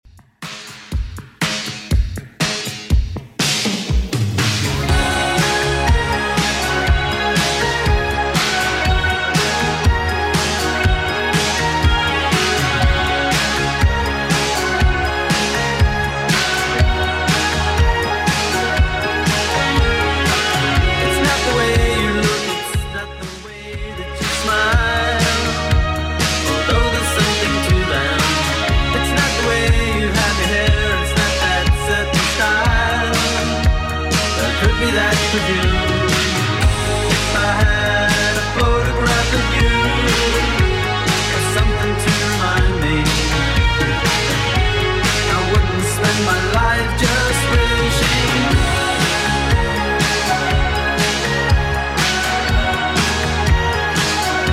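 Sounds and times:
80s Redrum drum machine beat: 0.0s - 54.5s.

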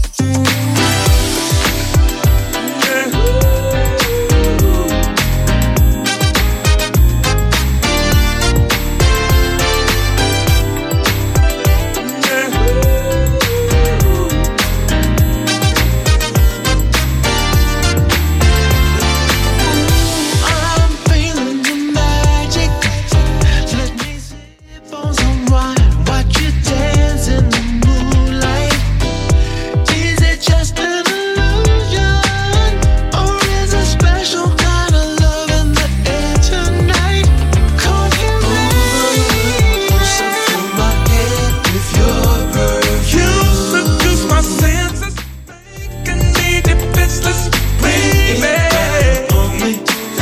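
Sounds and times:
smooth seventies style music: 0.1s - 50.2s.

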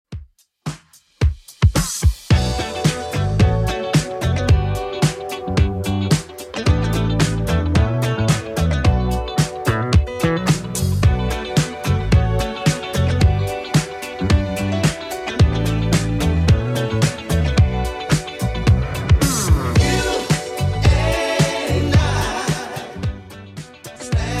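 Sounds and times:
70s style music at 110 bpm: 0.1s - 24.3s.

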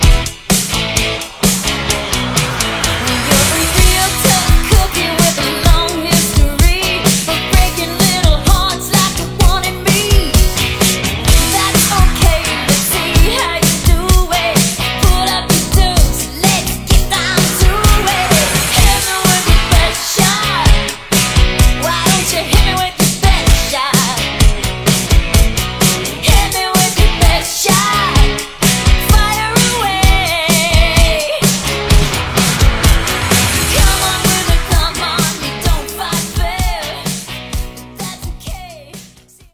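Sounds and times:
REDRUM drum machine slam end in E at 128bpm: 0.0s - 16.2s, 16.9s - 27.4s, 28.2s - 38.6s.

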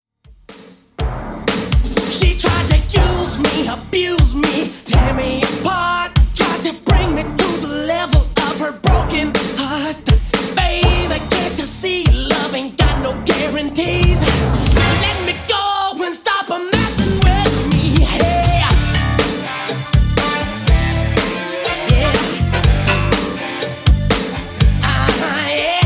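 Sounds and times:
90s music beat at 122 bpm: 0.3s - 15.8s, 16.7s - 25.8s.

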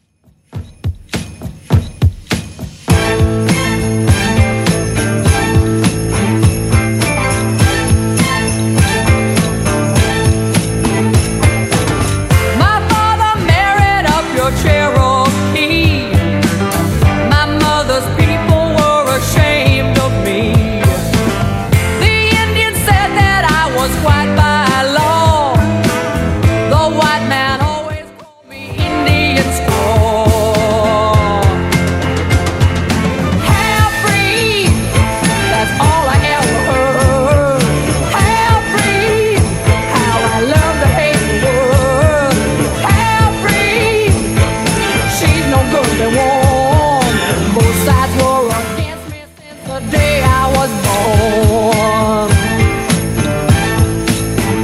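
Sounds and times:
70s style drum machine beat: 0.2s - 54.6s.

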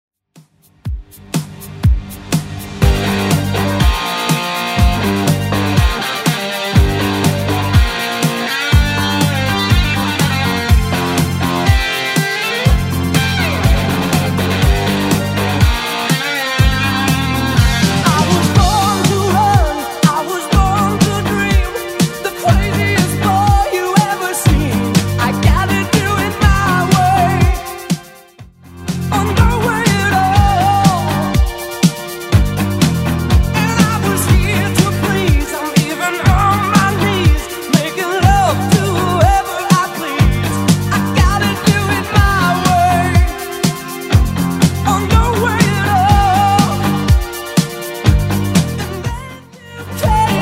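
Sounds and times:
80s rock music at 122 bpm: 0.4s - 50.4s.

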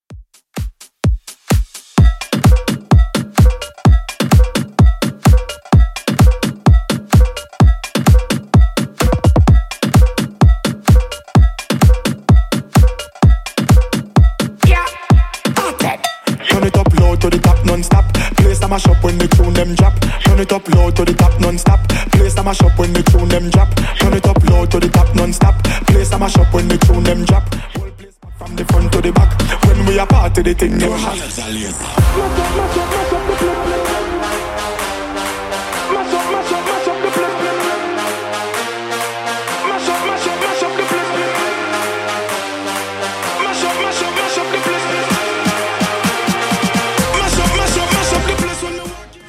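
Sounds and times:
Latin music loop: 0.1s - 49.2s.

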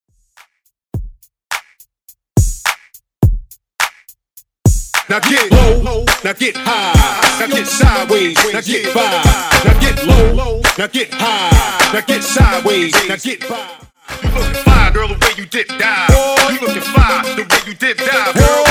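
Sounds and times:
hip hop hype music: 4.7s - 18.6s.

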